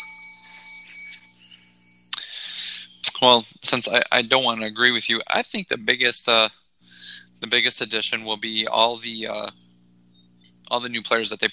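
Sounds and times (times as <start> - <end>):
bell ding: 0.0 - 2.9
speech: 3.2 - 6.6, 7.4 - 9.6, 10.7 - 11.5.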